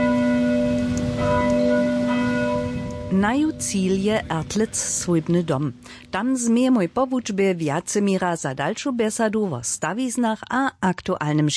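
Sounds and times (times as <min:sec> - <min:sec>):
parish church bells ringing next to a school: 0:00.0 - 0:05.8
speech: 0:03.1 - 0:11.5.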